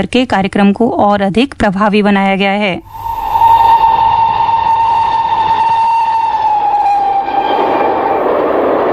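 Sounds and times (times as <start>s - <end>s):
speech: 0.0s - 3.0s
steady whistling tone: 2.8s - 8.8s
rough rush of noise: 2.8s - 8.9s
train running on rails: 2.8s - 8.9s.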